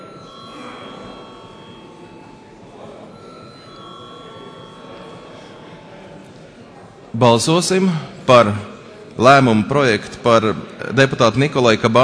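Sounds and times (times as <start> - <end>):
parliamentary voting call bell ringing: 0.0 - 6.8
low murmur of voices: 0.0 - 12.0
speech: 7.1 - 12.0.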